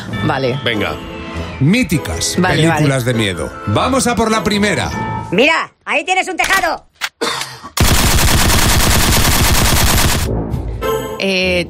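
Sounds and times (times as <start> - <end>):
speech: 0.3 - 6.9, 11.2 - 11.6
rapid automatic gunfire bursts: 7.8 - 10.3.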